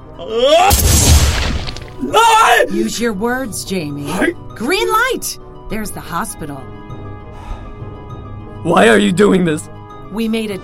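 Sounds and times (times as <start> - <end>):
speech: 0.2 - 1.1, 2.0 - 6.8, 8.6 - 10.6
handgun gunshot: 0.7 - 1.9.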